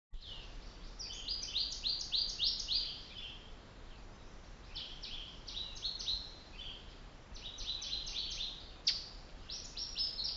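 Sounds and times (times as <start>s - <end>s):
bird song of fast high slurred notes on Mweka trail Kilimanjaro Africa: 0.2s - 4.0s, 4.6s - 10.3s
steady background hiss: 0.2s - 10.3s.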